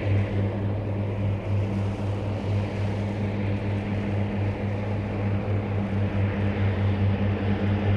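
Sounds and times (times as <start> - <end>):
airplane taking off in the distance: 0.0 - 7.9.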